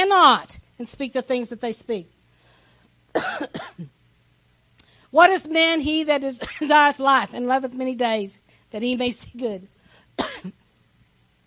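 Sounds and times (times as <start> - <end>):
speech: 0.1 - 2.2, 3.1 - 3.9, 5.1 - 10.6
sharp cough from a person with a tickle in the throat: 3.1 - 4.0, 6.4 - 6.7, 10.2 - 10.6.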